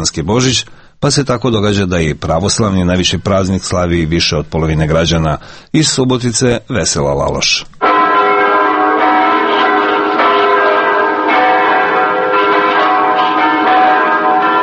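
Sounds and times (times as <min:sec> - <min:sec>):
speech: 0:00.0 - 0:07.9
church bells pealing: 0:07.8 - 0:14.6.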